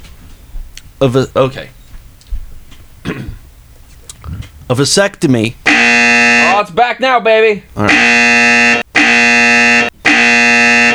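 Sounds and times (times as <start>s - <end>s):
speech: 1.0s - 1.8s, 4.7s - 8.4s
harsh game show buzzer: 5.6s - 6.7s, 7.8s - 10.9s.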